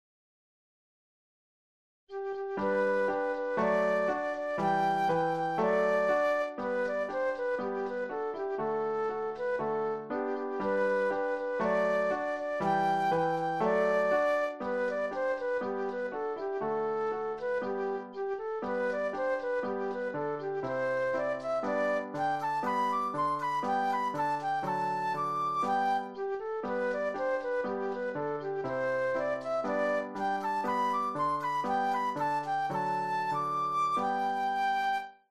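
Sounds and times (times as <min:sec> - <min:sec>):
solo flute playing a classical ecossaise: 0:02.1 - 0:35.2.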